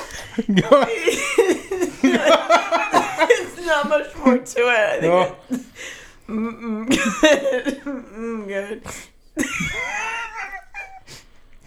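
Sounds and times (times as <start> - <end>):
deep snorted wheezing breath of someone struggling to breathe: 0.0 - 0.5, 5.5 - 6.8, 8.8 - 11.6
laughter: 0.0 - 11.6
speech: 0.4 - 2.3, 3.8 - 5.6, 6.3 - 10.2
breathy gasps: 5.6 - 6.8, 8.8 - 11.6.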